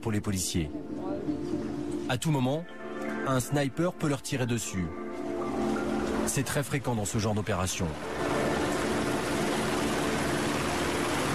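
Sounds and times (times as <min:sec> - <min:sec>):
speech: 0:00.0 - 0:08.4
helicopter flying low overhead: 0:07.4 - 0:11.3.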